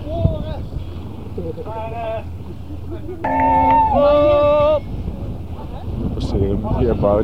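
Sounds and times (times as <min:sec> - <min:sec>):
wind: 0:00.0 - 0:07.2
speech: 0:01.4 - 0:04.9, 0:06.2 - 0:07.2
boat horn tooting at another boat: 0:03.3 - 0:04.9.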